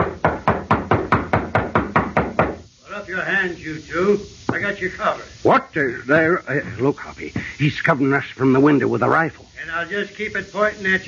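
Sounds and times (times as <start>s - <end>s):
knocking on a wooden door: 0.0s - 2.6s
speech: 3.1s - 11.0s.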